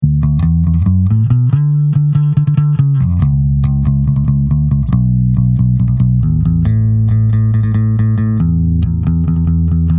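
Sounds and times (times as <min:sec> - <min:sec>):
guitar picks compared: 0:00.0 - 0:09.9.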